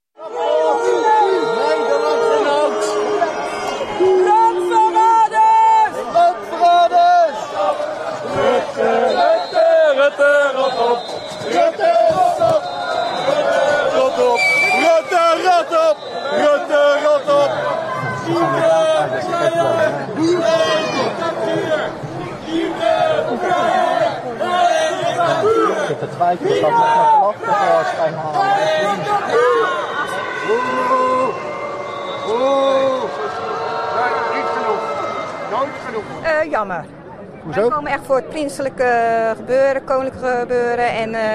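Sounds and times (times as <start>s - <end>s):
large crowd booing and shouting: 0.2s - 36.4s
sharp whistles from crowd: 10.6s - 11.7s, 14.4s - 16.6s, 31.1s - 33.0s
speech: 36.6s - 41.3s.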